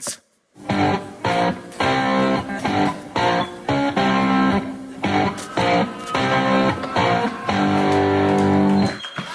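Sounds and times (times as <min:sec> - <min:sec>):
distorted rock guitar track played through speakers: 0:00.6 - 0:09.0.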